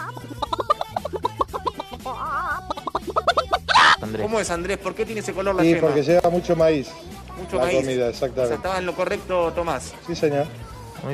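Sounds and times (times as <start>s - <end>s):
hen clucking: 0.0s - 4.3s
speech: 4.2s - 11.1s.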